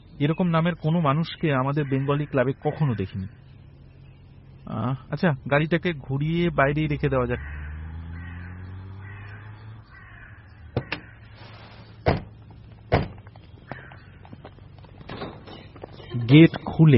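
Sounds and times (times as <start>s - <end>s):
speech: 0.2s - 3.4s, 4.7s - 7.6s, 16.3s - 16.9s
crows giving harsh repeated caws in trees at dusk: 1.6s - 3.6s, 6.9s - 11.7s, 13.5s - 14.9s
sharp knocks or bangs: 10.7s - 11.1s, 12.0s - 13.3s.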